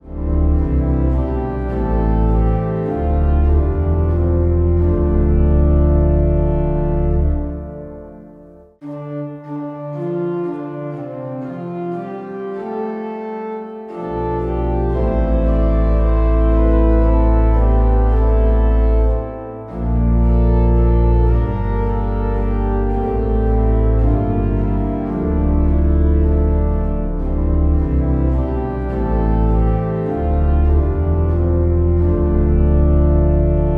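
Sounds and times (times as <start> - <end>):
organ playing a hymn: 0.0 - 33.7.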